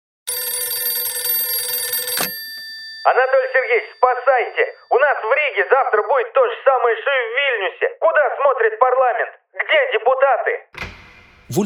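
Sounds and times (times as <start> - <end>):
old-style telephone bell ringing: 0.3 - 6.3
speech: 3.0 - 10.8, 11.5 - 11.6.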